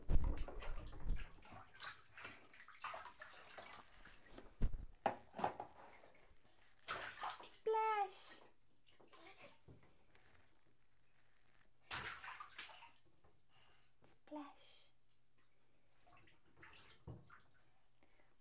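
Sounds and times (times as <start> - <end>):
water sloshing and splashing in a bathtub: 0.0 - 10.1, 11.6 - 14.0, 15.0 - 18.3
child's voice: 7.5 - 8.5, 14.2 - 14.9.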